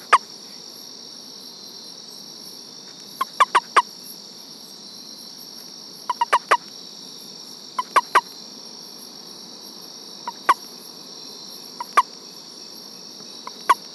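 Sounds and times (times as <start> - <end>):
frog calls of sharp knocking clicks: 0.0 - 0.2, 3.2 - 3.9, 6.1 - 6.7, 7.8 - 8.3, 10.2 - 10.7, 11.8 - 12.1, 13.2 - 13.9
steady high-pitched insect drone: 0.0 - 13.9.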